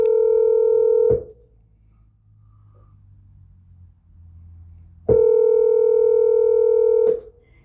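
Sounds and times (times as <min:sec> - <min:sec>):
phone line ringing through a handset: 0:00.0 - 0:01.1, 0:05.1 - 0:07.2.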